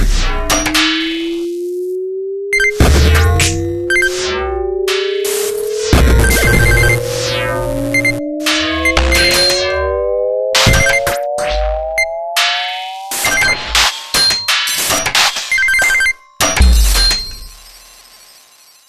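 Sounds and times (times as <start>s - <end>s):
arcade alarm clock tone: 0.2s - 18.8s.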